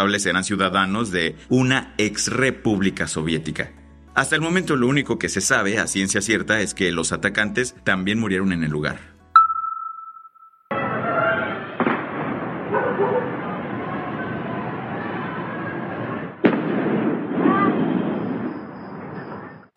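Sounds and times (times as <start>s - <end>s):
speech: 0.0s - 9.1s
high beep: 9.4s - 10.7s
explosions during prison fire: 10.7s - 19.7s
gunfire during prison fire: 16.4s - 18.6s.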